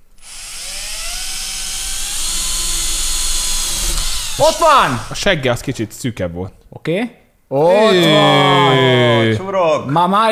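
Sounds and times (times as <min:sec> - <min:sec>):
power drill boring a hole: 0:00.0 - 0:05.2
speech: 0:04.4 - 0:10.3.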